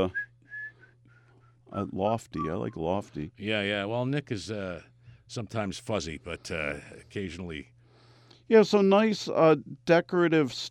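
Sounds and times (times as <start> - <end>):
speech: 0.0 - 0.2, 1.7 - 7.7, 8.5 - 10.6
low steady hum: 0.0 - 10.6
person whistling a tune: 0.1 - 1.0.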